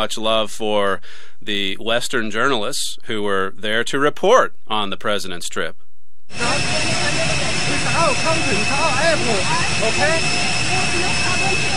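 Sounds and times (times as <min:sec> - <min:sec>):
speech: 0:00.0 - 0:07.4, 0:08.0 - 0:11.2
airplane engine roar at an airport in China: 0:06.3 - 0:11.7
voices talking: 0:06.4 - 0:11.7.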